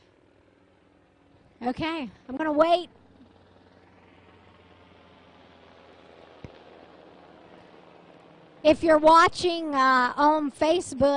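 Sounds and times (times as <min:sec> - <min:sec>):
large military helicopter rotor roar passing overhead: 0:00.0 - 0:11.1
speech: 0:01.6 - 0:03.0, 0:08.6 - 0:11.1
sharp crack: 0:06.2 - 0:06.9.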